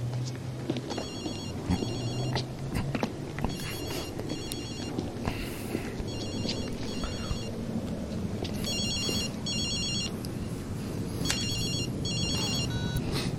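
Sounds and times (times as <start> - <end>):
low murmur: 0.0 - 13.3
ringing tone of an outgoing telephone call: 0.9 - 2.4, 3.4 - 5.2, 6.0 - 7.6, 8.6 - 10.2, 11.2 - 13.0.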